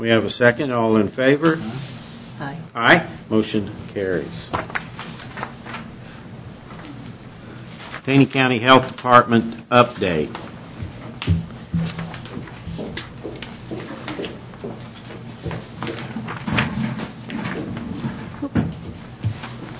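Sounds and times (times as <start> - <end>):
speech: 0.0 - 4.8, 8.0 - 10.5
chair rolling and scraping as it slides away: 9.3 - 19.7.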